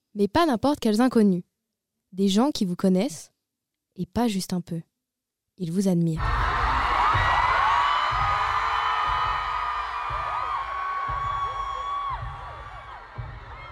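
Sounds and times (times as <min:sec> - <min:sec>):
speech: 0:00.2 - 0:01.5, 0:02.1 - 0:03.3, 0:04.0 - 0:04.9, 0:05.6 - 0:06.4
large concert crowd screaming and cheering: 0:06.2 - 0:13.7
low rhythmic thumping: 0:06.2 - 0:13.7.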